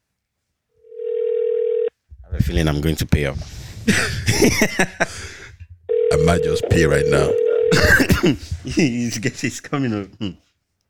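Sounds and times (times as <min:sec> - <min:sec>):
telephone dial tone while dialing a call: 0:00.9 - 0:01.9, 0:05.9 - 0:06.4, 0:07.3 - 0:07.7
speech: 0:02.4 - 0:05.4, 0:06.1 - 0:10.5.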